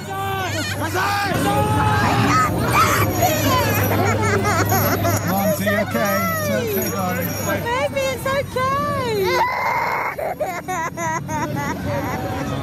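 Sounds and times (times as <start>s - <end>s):
several children wailing and screaming at a street parade: 0.0s - 7.0s, 8.4s - 12.6s
dense noisy outdoor crowd: 0.0s - 12.6s
laughter: 0.1s - 7.2s, 8.8s - 12.6s.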